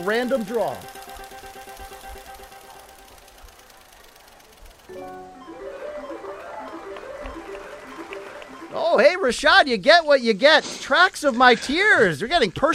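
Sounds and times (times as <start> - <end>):
speech: 0.0 - 1.0, 8.7 - 12.7
musical melody: 0.0 - 4.2, 4.8 - 9.4
prize wheel spinning and ticking: 0.0 - 9.8.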